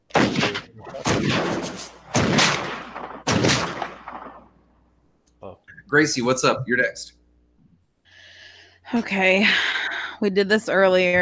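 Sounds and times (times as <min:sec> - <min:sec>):
gunshot sound effect: 0:00.1 - 0:04.6
speech: 0:05.9 - 0:07.2, 0:08.9 - 0:11.2.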